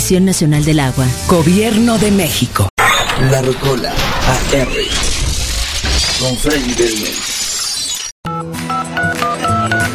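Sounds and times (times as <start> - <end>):
speech: 0.1 - 5.3, 6.2 - 7.4
telephone keypad dialing tones: 8.7 - 9.9.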